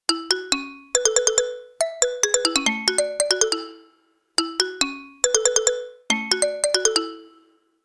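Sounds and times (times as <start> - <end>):
xylophone: 0.1 - 7.7.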